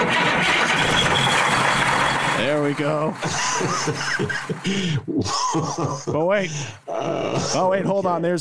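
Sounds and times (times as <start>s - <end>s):
large bus engine cranking and starting: 0.0s - 4.8s
speech: 2.7s - 8.4s
laughter: 3.2s - 8.2s.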